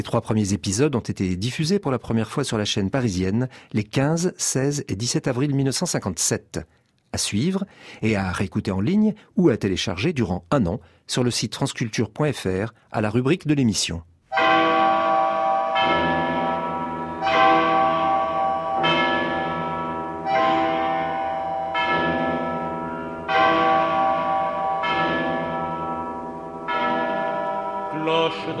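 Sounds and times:
speech: 0.0s - 14.1s
large cathedral carillon bells of Notre-Dame in Paris ringing: 14.3s - 28.5s.

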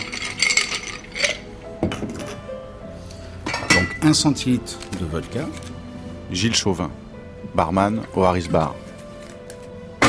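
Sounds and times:
ice cubes clinking and rattling into a mixing glass for a Vesper cocktail: 0.0s - 1.5s
speech: 4.0s - 5.7s, 6.3s - 8.8s.

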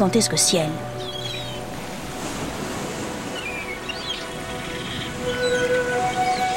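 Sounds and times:
speech: 0.0s - 1.2s
ocean waves breaking against rocks: 1.3s - 6.5s.

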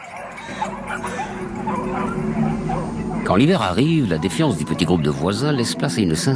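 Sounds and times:
dogs barking and yipping: 0.0s - 3.4s
speech: 0.5s - 6.3s.

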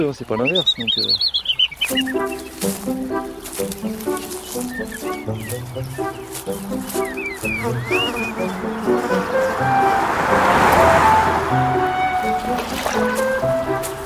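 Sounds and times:
speech: 0.0s - 3.0s, 3.6s - 13.9s
birds singing and chirping outdoors at the source of a river: 0.0s - 14.0s.

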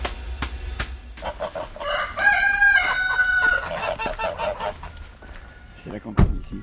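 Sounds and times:
hens clucking: 1.2s - 6.6s
speech: 5.9s - 6.6s.

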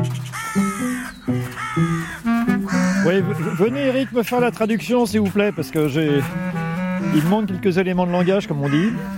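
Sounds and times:
loud harsh crow caws: 0.1s - 7.1s, 7.9s - 9.1s
speech: 3.2s - 9.1s.

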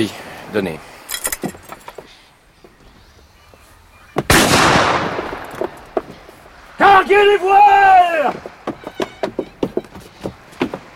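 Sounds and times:
speech: 0.0s - 0.9s, 7.1s - 8.4s
rifle shot fired as a signal on a sailing ship: 4.3s - 5.7s.

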